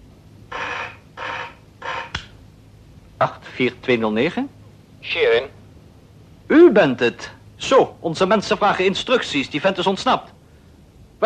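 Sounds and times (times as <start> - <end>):
telephone ringing: 0.5 - 2.2
speech: 3.2 - 5.6, 6.5 - 10.3.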